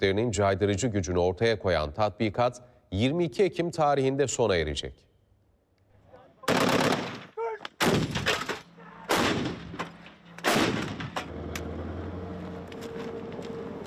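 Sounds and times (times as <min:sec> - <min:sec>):
speech: 0:00.0 - 0:05.1
gunfire and artillery at a military firing exercise at an army barracks: 0:06.4 - 0:11.3
sustained low rumble of continued firing: 0:09.1 - 0:11.4.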